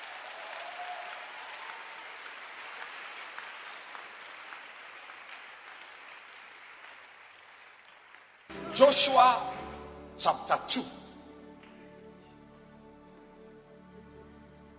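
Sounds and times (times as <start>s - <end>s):
church congregation clapping hands: 0.0s - 12.4s
speech: 8.8s - 9.6s, 10.2s - 11.0s.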